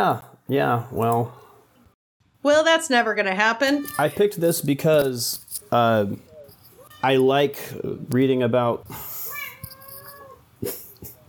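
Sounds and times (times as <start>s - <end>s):
speech: 0.0s - 1.4s, 2.4s - 6.3s, 7.0s - 9.1s, 10.6s - 10.8s
cat meowing with wavering pitch: 9.3s - 10.4s.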